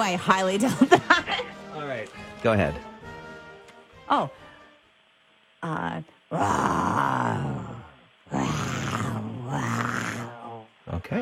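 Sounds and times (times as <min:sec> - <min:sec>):
speech: 0:00.0 - 0:01.2, 0:01.8 - 0:02.9, 0:04.1 - 0:04.4, 0:05.6 - 0:07.5, 0:11.0 - 0:11.2
laughter: 0:00.4 - 0:01.9
person imitating a lion roar: 0:06.3 - 0:11.2.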